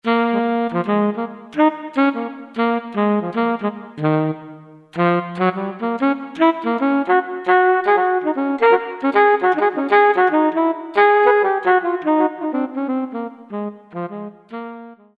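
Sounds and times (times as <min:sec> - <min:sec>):
soft saxophone: 0:00.0 - 0:15.1.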